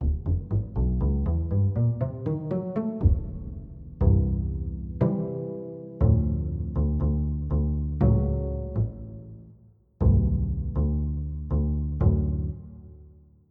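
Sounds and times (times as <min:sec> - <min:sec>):
dry pizzicato: 0:00.0 - 0:13.2.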